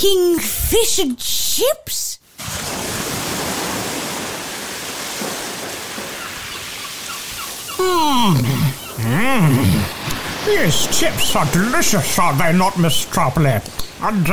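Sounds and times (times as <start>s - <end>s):
speech: 0.0s - 2.7s, 7.8s - 9.8s, 10.5s - 14.3s
ocean waves washing at the seaside: 2.2s - 14.3s
loud swooping bird cries: 6.0s - 10.0s.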